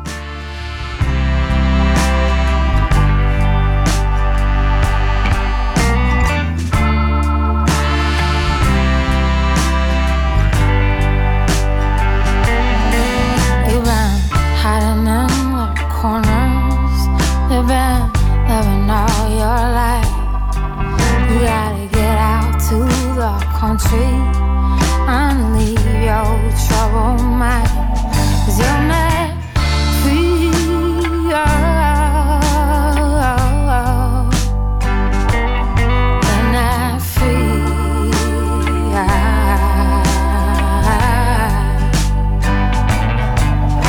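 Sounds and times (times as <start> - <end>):
song by a Canadian singer-songwriter with sustained instrumental backing: 0.0 - 43.8
lead vocal singing: 12.8 - 20.4, 21.0 - 34.5, 36.2 - 42.6.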